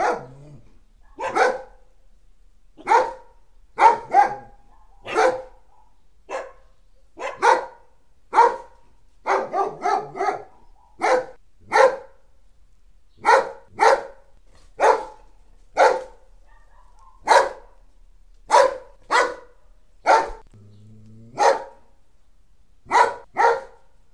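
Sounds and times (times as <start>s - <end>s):
dog barking: 0.0s - 0.4s, 1.0s - 1.9s, 2.8s - 12.3s, 13.2s - 17.9s, 18.5s - 20.5s, 21.3s - 21.9s, 22.9s - 24.0s.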